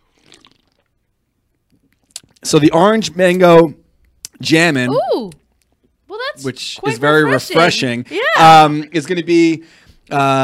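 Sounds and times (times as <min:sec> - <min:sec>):
quick quiet sip from a mug: 0:00.0 - 0:00.9
speech: 0:02.5 - 0:03.8, 0:04.4 - 0:05.4, 0:06.4 - 0:10.4.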